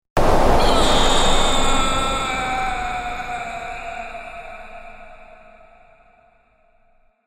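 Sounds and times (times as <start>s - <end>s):
man screaming when sucked through a space airlock: 0.6s - 6.2s.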